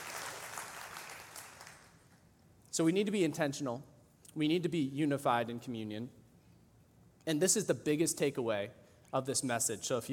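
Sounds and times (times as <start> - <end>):
church congregation clapping: 0.0 - 2.2
speech: 2.8 - 6.2, 7.2 - 10.1.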